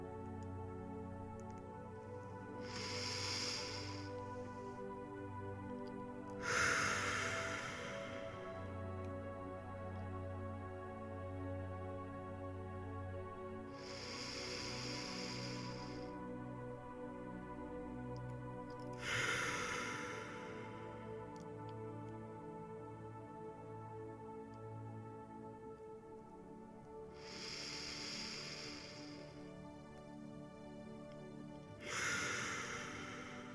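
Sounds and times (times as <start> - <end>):
deep breathing: 0.0 - 9.2, 13.6 - 16.4, 18.5 - 23.4, 27.0 - 33.5
soft steady tonal drone: 0.0 - 33.5.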